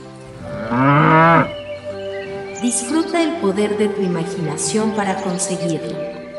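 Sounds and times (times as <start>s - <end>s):
single cow mooing: 0.3s - 1.6s
speech: 2.7s - 6.2s.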